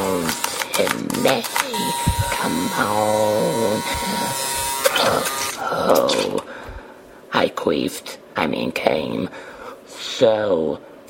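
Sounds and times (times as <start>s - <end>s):
electric shaver buzzing: 0.0s - 5.6s
speech: 0.8s - 4.4s, 7.5s - 10.9s.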